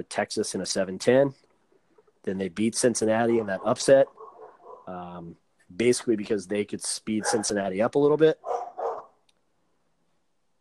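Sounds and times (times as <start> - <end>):
speech: 0.0 - 1.5, 2.2 - 4.2, 4.9 - 8.7
dog barking: 3.3 - 4.9, 7.2 - 7.6, 8.4 - 9.2.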